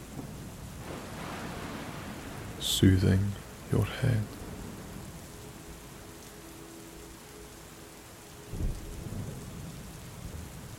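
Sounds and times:
low distant thunder rumbling: 0.0 - 6.0, 8.5 - 10.7
rain hissing on a warm summer night: 0.0 - 10.7
soft voice speaking: 2.6 - 4.3
speech: 2.6 - 4.4.

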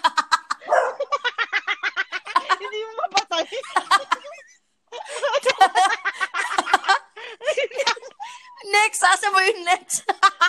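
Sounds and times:
laughter: 0.0 - 8.6, 9.8 - 10.4
high-pitched dog barks sound effect: 0.6 - 1.1
speech: 9.1 - 10.2.

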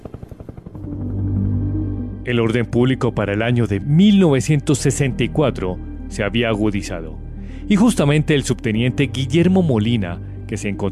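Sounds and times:
Hiller helicopter rotor thumping in flight: 0.0 - 1.5
speech: 2.3 - 10.8.

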